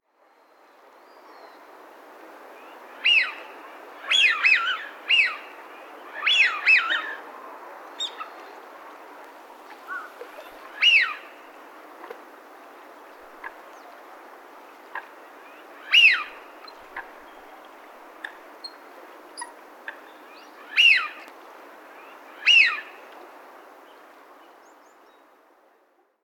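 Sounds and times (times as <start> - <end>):
Eurasian wigeon in Soka: 2.7 - 7.2, 8.0 - 8.5, 9.8 - 11.4, 14.9 - 21.3, 22.1 - 23.0.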